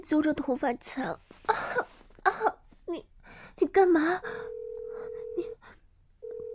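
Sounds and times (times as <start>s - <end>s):
speech: 0.1s - 1.3s, 3.8s - 4.4s
telephone being dialled to place a call: 4.3s - 5.6s, 6.2s - 6.5s.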